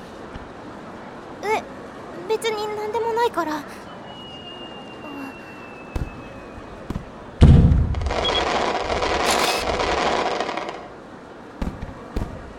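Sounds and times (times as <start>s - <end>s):
speech: 2.3s - 3.9s
fireworks exploding: 5.9s - 11.0s
dense crackling of fireworks: 7.4s - 11.0s.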